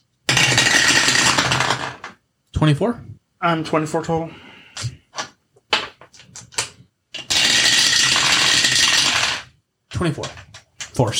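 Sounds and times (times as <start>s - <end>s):
two dice tumbling down a dice tower during a tabletop game: 0.3s - 2.2s, 7.1s - 9.5s
speech: 2.6s - 5.0s, 10.0s - 10.4s, 11.0s - 11.1s.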